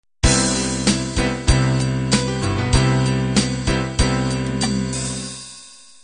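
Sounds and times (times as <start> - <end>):
rock ballad intro: 0.2 - 5.4.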